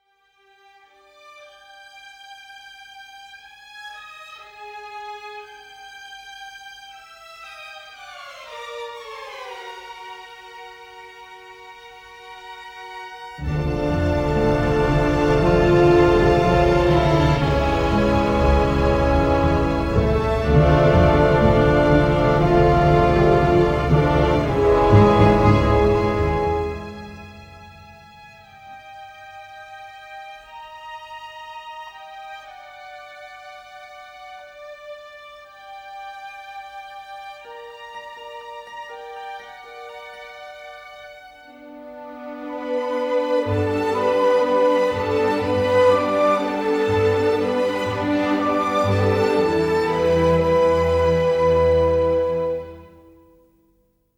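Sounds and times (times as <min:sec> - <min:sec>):
dark orchestral music: 0:13.4 - 0:28.8, 0:41.6 - 0:53.2.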